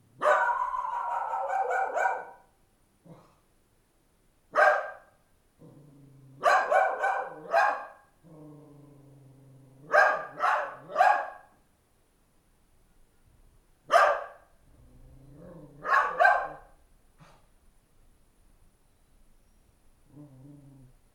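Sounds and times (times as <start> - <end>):
dog in a village at night: 0.2 - 2.5, 4.5 - 5.2, 6.4 - 8.1, 9.8 - 11.6, 13.9 - 14.5, 15.8 - 17.5.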